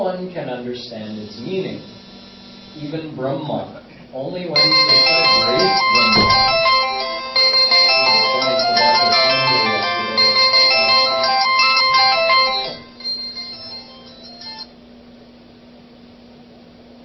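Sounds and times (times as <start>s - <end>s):
speech: 0.0s - 2.0s, 2.8s - 6.6s
faint steady hum: 0.0s - 17.0s
phone ringtone playing a bright melodic electronic tune: 1.0s - 3.0s, 4.6s - 14.7s.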